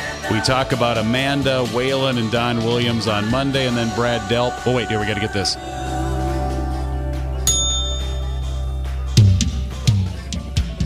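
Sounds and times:
speech: 0.2 - 5.9
steady sustained drone: 3.5 - 10.3
bell ringing: 5.4 - 10.5.

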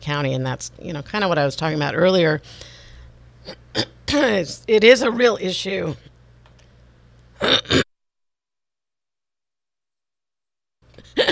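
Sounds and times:
speech: 0.0 - 2.8, 3.4 - 6.1
person coughing: 3.5 - 4.0, 7.4 - 7.8, 11.0 - 11.3.

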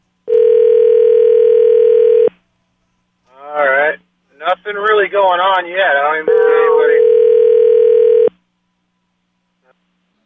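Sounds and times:
outgoing phone call ringing tone to a burner phone: 0.3 - 2.3, 6.3 - 8.3
speech: 4.7 - 6.9.

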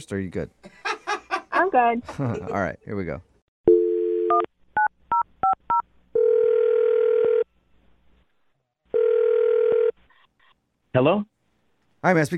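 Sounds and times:
speech: 0.0 - 0.8, 1.7 - 3.3, 10.9 - 11.3, 12.0 - 12.3
laughter: 0.7 - 2.8
phone dial tone: 3.7 - 4.5, 6.2 - 7.4, 9.0 - 10.0.

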